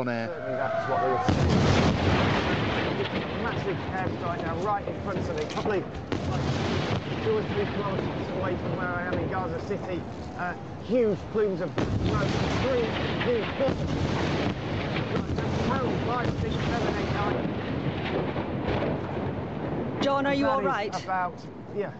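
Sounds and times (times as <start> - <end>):
speech: 0.0 - 18.8, 20.1 - 21.9
airstrike explosions about a kilometre away: 0.9 - 21.0.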